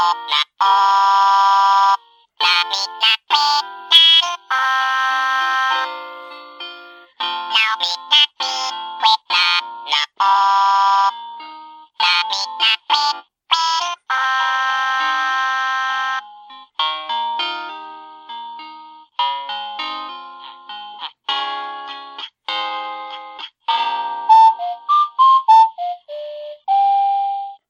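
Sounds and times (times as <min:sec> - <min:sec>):
Christmas ornament singing a tinny electronic tune: 0:00.1 - 0:27.6
whistle-like tones from a Christmas ornament: 0:24.2 - 0:27.6.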